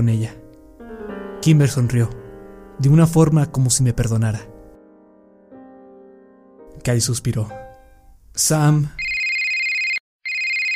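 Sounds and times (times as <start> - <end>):
speech: 0.0 - 0.4, 1.4 - 2.2, 2.8 - 4.5, 6.8 - 7.7, 8.4 - 9.0
shrill electronic cell phone ringtone ringing: 9.0 - 10.7.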